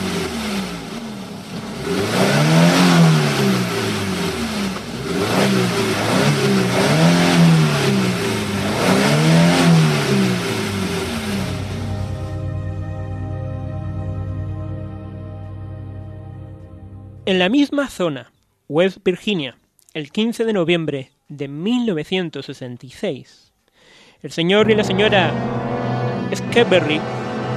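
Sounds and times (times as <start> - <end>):
car engine accelerating hard on a road: 0.0 - 17.4, 24.6 - 27.5
speech: 17.3 - 23.5, 24.2 - 25.6, 26.3 - 27.2.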